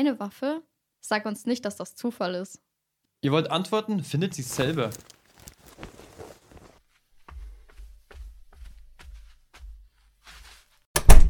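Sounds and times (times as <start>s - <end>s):
speech: 0.0s - 5.1s
man's heavy footsteps walking away: 4.4s - 10.8s
rustle: 4.5s - 6.8s.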